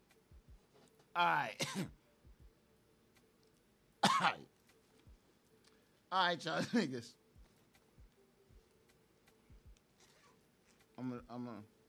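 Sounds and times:
speech: 1.2s - 2.0s, 4.2s - 4.5s, 6.1s - 7.2s, 11.0s - 11.7s
harsh heavy coughing fit: 1.5s - 2.0s, 4.0s - 4.5s.

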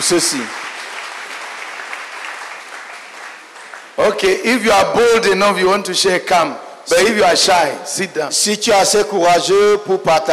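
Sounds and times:
speech: 0.0s - 0.7s, 4.0s - 10.3s
congregation clapping during a worship service: 0.0s - 5.0s.

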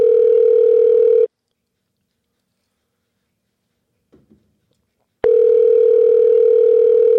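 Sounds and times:
telephone ringback tone of an outgoing call: 0.0s - 1.3s, 5.2s - 7.1s.

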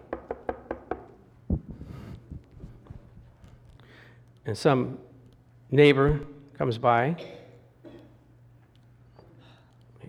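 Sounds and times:
crisp knocking on a door: 0.0s - 1.7s
speech: 4.5s - 5.1s, 5.7s - 7.4s.

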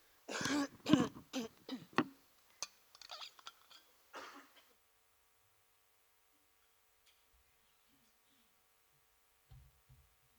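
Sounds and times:
person clearing throat: 0.3s - 2.1s
person coughing in harsh bursts: 0.3s - 2.1s, 4.2s - 4.5s.

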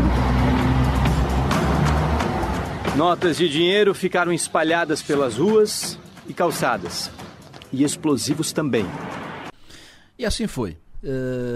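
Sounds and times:
car engine rumbling: 0.0s - 3.4s
road noise of passing car: 0.0s - 4.4s, 6.0s - 9.6s
speech: 3.0s - 9.3s, 10.2s - 11.5s.

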